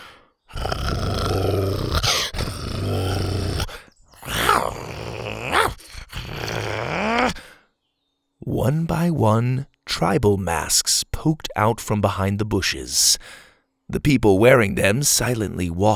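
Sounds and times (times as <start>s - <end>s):
dinosaurs growling and roaring at a camp: 0.0s - 7.5s
speech: 8.6s - 15.9s.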